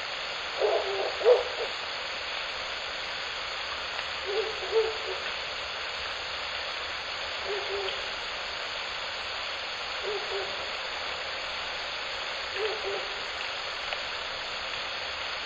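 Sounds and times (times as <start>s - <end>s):
steady hiss: 0.0s - 15.4s
owl hooting at night: 0.6s - 1.8s, 4.2s - 5.3s, 7.4s - 8.1s, 10.0s - 10.7s, 12.5s - 13.3s.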